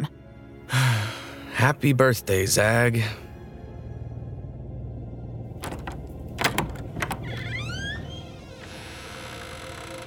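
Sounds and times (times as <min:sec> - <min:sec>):
speech: 0:01.6 - 0:03.2
door latch clicks: 0:05.6 - 0:08.0
door knocks: 0:05.6 - 0:08.1
bedroom door creaking open: 0:05.6 - 0:10.0.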